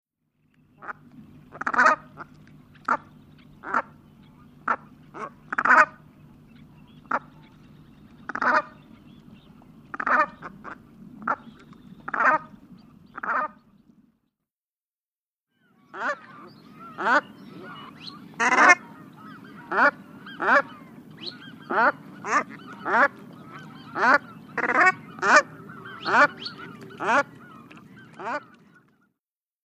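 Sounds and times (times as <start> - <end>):
brant geese calling: 0.8 - 13.6, 15.8 - 28.9.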